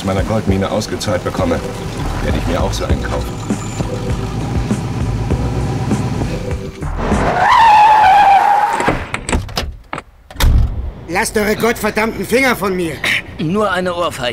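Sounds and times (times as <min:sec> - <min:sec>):
speech: 0:00.0 - 0:04.3, 0:11.1 - 0:14.3
Cadillac car tires squealing in a skid: 0:00.2 - 0:09.0.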